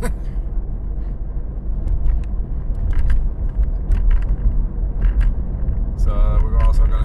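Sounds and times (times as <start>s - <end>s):
moving car engine and road noise: 0.0s - 7.0s
light clicks and rattles: 1.8s - 7.0s.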